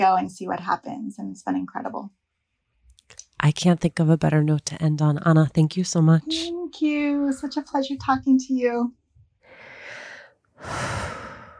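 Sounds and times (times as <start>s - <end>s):
speech: 0.0s - 2.2s, 3.4s - 9.0s, 10.6s - 11.0s
deep breath: 9.4s - 11.5s.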